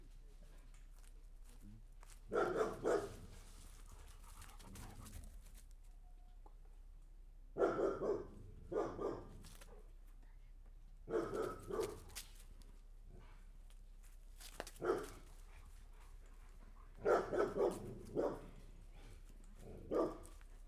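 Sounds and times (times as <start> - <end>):
village dogs barking: 2.3 - 3.3, 7.6 - 9.3, 11.1 - 12.1, 14.8 - 15.2, 17.0 - 18.6, 19.6 - 20.4.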